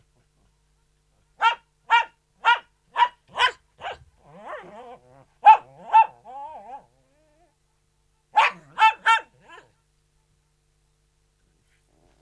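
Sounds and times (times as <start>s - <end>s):
poodle barking indoors: 1.4s - 4.7s, 5.4s - 6.8s, 8.3s - 9.8s
poodle whining softly: 4.2s - 7.5s.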